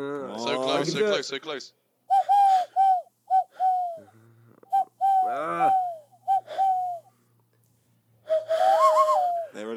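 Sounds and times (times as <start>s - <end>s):
speech: 0.0s - 1.8s, 5.3s - 5.8s
person imitating owl hoots: 2.1s - 4.1s, 4.7s - 7.1s, 8.4s - 9.6s.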